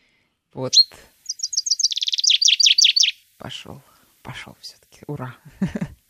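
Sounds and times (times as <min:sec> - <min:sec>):
speech: 0:00.6 - 0:01.1, 0:03.4 - 0:06.0
European common chaffinch singing: 0:00.6 - 0:03.2
laughter: 0:05.5 - 0:06.0.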